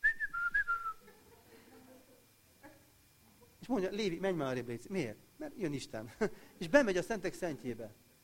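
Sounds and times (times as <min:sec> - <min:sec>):
man whistling a short bright tune while walking past: 0:00.0 - 0:01.0
speech: 0:03.7 - 0:08.0.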